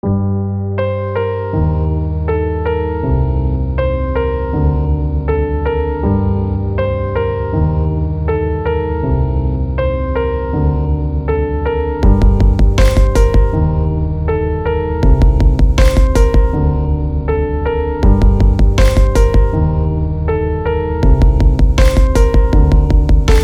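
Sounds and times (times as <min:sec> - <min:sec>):
piano: 0:00.0 - 0:23.4
drum: 0:12.0 - 0:13.6, 0:15.1 - 0:16.6, 0:18.0 - 0:19.6, 0:21.0 - 0:23.4.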